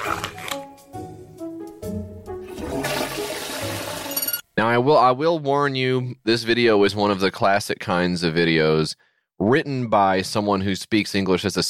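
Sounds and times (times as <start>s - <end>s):
toilet flushing: 2.4s - 4.3s
speech: 4.6s - 11.6s.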